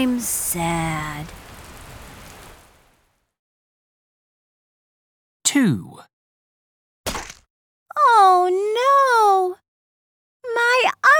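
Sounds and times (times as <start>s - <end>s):
speech: 0.0s - 1.4s, 5.6s - 6.1s, 8.0s - 9.6s, 10.5s - 11.1s
steady rain pattering: 0.0s - 3.4s.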